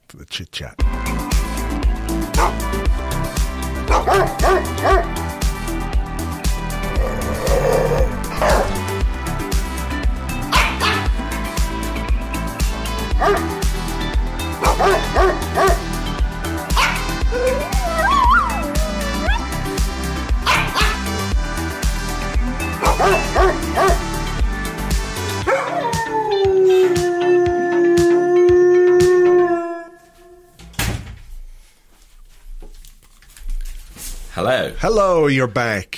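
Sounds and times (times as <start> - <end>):
speech: 0.1 - 3.1, 3.9 - 5.3, 34.6 - 35.9
steady loud musical backing of a jingle: 0.8 - 29.9
dog barks and yips: 2.3 - 2.7, 3.9 - 5.2, 8.3 - 8.8, 10.5 - 11.2, 13.1 - 13.5, 14.6 - 15.8, 16.7 - 19.6, 20.4 - 21.1, 22.7 - 24.1, 25.4 - 26.0
dog whimpering whine: 17.3 - 19.6.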